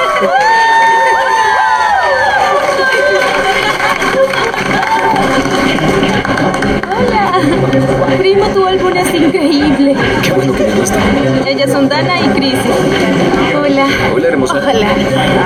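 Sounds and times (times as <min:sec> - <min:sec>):
high whoops: 0:00.0 - 0:05.4
crowd cheering: 0:00.0 - 0:15.4
laughter: 0:00.0 - 0:15.4
shouted voices: 0:00.0 - 0:15.4
speech: 0:00.2 - 0:00.4, 0:08.3 - 0:15.4.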